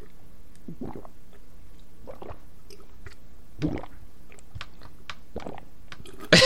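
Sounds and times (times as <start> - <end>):
person gulping water: 0.0 - 1.4, 2.0 - 6.4
soft mouth sounds: 0.0 - 4.5.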